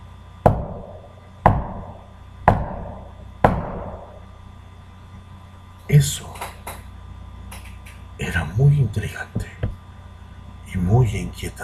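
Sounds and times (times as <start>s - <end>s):
low hum: 0.0s - 11.6s
heavy knocks on a wall: 0.4s - 4.2s
speech: 5.9s - 6.4s, 8.6s - 9.6s, 11.0s - 11.6s.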